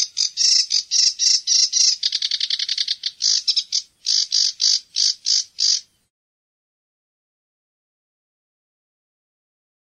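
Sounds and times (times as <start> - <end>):
sedge warbler song: 0.0 - 6.1.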